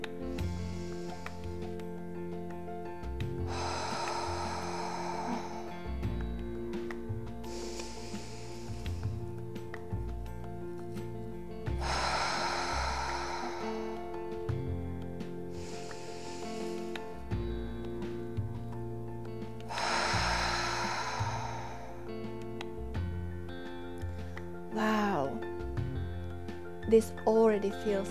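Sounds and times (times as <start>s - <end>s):
person breathing deeply in and out: 0.0s - 2.0s, 3.4s - 9.8s, 11.6s - 17.8s, 19.6s - 23.2s
gentle sustained music: 0.0s - 28.0s
speech: 26.9s - 28.0s.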